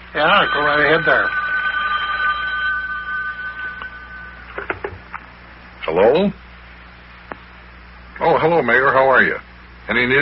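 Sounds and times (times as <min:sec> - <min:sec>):
speech: 0:00.1 - 0:01.4, 0:05.9 - 0:06.4, 0:08.3 - 0:10.1
telephone bell ringing: 0:00.1 - 0:05.1.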